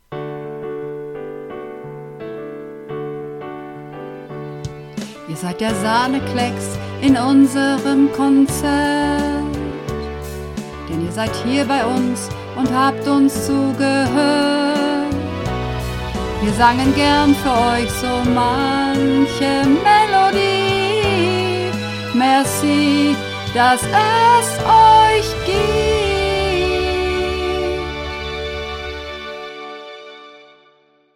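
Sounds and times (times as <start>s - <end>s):
soprano singing practice recording: 5.1s - 9.9s, 10.8s - 29.1s.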